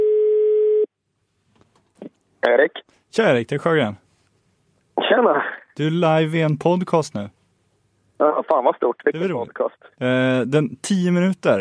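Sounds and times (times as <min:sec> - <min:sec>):
electronic ringback tone from a phone line: 0:00.0 - 0:00.9
speech: 0:02.4 - 0:04.0, 0:05.2 - 0:07.4, 0:08.2 - 0:11.5.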